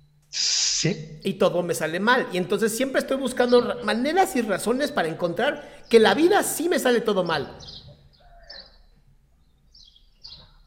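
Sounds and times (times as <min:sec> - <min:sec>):
speech: 0:00.8 - 0:07.8
small birds chirping in a park: 0:03.0 - 0:10.6
owl in a park: 0:07.6 - 0:08.9.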